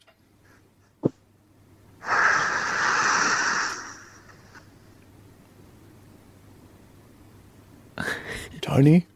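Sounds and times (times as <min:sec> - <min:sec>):
man breathing out forcefully: 0:02.0 - 0:04.3.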